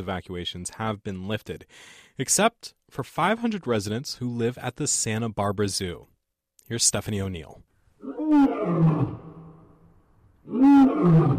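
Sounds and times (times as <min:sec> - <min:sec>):
speech: 0:00.0 - 0:06.1, 0:06.7 - 0:07.7, 0:08.3 - 0:09.2, 0:10.5 - 0:11.3
African lion roaring: 0:08.0 - 0:09.7, 0:10.4 - 0:11.3.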